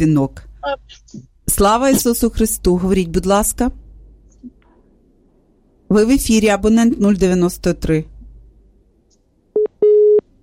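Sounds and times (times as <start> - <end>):
speech: 0.0 - 3.8, 5.9 - 8.1
telephone busy tone after a dropped call-in call: 9.6 - 10.2.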